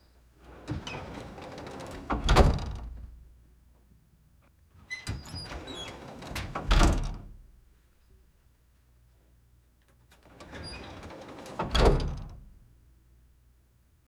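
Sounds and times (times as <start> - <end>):
glass door opening loudly: 0.5 - 2.9, 5.0 - 7.4, 10.2 - 12.5.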